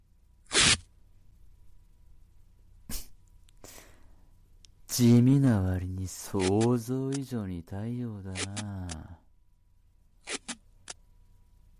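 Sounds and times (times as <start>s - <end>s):
duct tape being torn away: 0.5s - 0.9s
speech: 5.0s - 9.2s.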